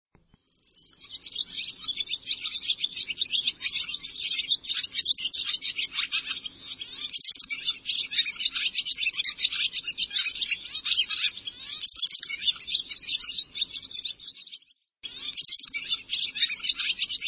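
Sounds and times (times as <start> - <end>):
birds chirping and twittering: 0.1 - 17.2.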